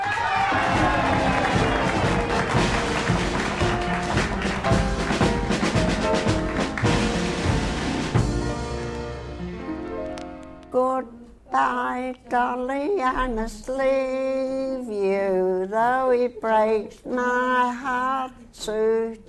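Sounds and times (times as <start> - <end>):
audience applauding and cheering: 0.0 - 8.2
band striking up: 0.3 - 10.7
speech: 10.8 - 19.2.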